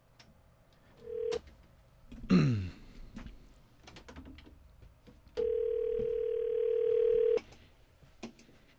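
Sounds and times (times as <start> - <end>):
telephone ringback tone on a call: 1.0 - 1.4, 5.4 - 7.4.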